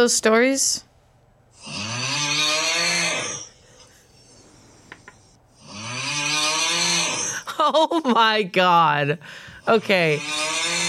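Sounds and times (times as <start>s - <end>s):
speech: 0.0s - 0.9s, 7.7s - 10.6s
man snoring with rasping rattle: 1.5s - 7.5s, 9.6s - 10.8s.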